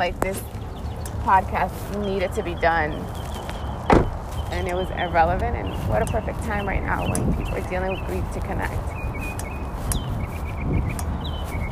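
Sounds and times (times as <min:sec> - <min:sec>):
speech: 0:00.0 - 0:00.6, 0:01.2 - 0:03.2, 0:04.5 - 0:09.0
birds singing outdoors with high chirps and whistles: 0:00.0 - 0:11.6.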